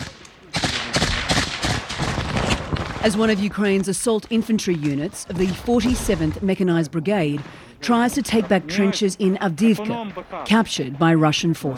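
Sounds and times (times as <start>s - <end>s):
outgoing gunfire at trenches in Avdiivka, Ukraine: 0.0s - 6.6s, 7.2s - 8.9s
incoming artillery explosions at trenches in Avdiivka, Ukraine: 0.0s - 8.8s
speech: 3.0s - 11.7s.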